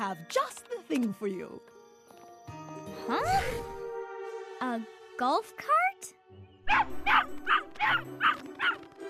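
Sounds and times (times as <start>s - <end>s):
speech: 0.1s - 1.8s, 2.9s - 3.8s, 4.6s - 8.9s
puppies yipping and barking in high-pitched calls: 6.7s - 8.8s.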